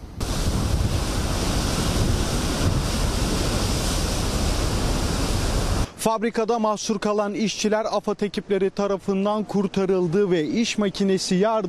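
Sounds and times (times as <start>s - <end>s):
70 km/h wind in a rainy storm in Istanbul: 0.0s - 6.0s
giant sea waves churning during a rainy storm in Istanbul: 0.0s - 11.6s
speech: 6.0s - 11.6s.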